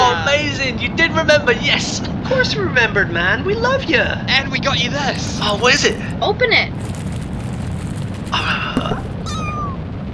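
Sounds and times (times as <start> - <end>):
speech: 0.4 - 7.0
steady low rumble of noise: 3.9 - 10.1
kitten meowing: 8.4 - 9.8.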